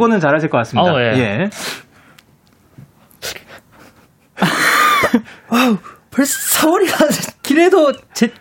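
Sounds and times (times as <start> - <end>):
speech: 0.0 - 1.9, 3.2 - 3.4, 4.4 - 8.4
short sniffing breaths imitating a sneeze build-up: 3.0 - 6.0
laughter: 3.8 - 5.3.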